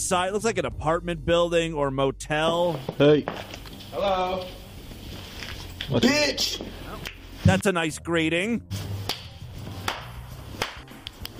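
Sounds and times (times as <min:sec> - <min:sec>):
speech: 0:00.0 - 0:04.6, 0:05.9 - 0:08.9
person slapping or clapping hands under stairs outside an apartment building or motel: 0:07.0 - 0:07.2, 0:09.0 - 0:11.3.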